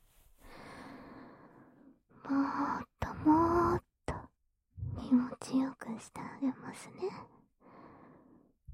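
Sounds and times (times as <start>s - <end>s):
person whispering: 2.3s - 7.3s.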